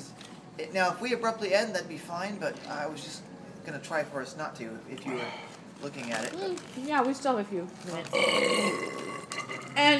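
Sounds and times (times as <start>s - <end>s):
speech: 0.6s - 9.9s
long burp after a hearty dinner: 8.1s - 9.8s.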